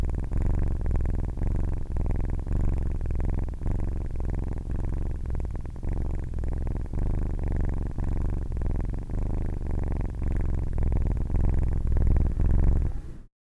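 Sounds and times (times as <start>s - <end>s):
male domestic kitten purring: 0.0s - 13.3s.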